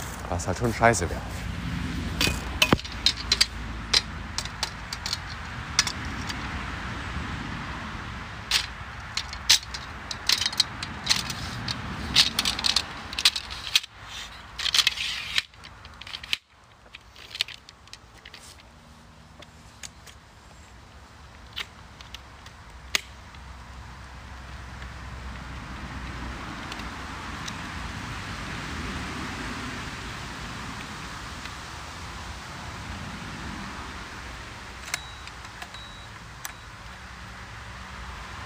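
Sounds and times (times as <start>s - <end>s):
steady noise: 0.0s - 38.4s
speech: 0.3s - 1.5s
camera tripod being packed away with clicks and rustles of plastic and metal parts: 2.1s - 6.7s, 8.3s - 27.7s, 34.6s - 37.4s.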